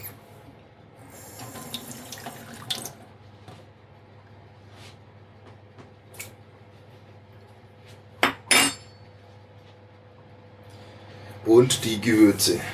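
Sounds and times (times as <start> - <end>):
water running from a kitchen tap into a sink: 1.2 - 3.0
speech: 11.5 - 12.7.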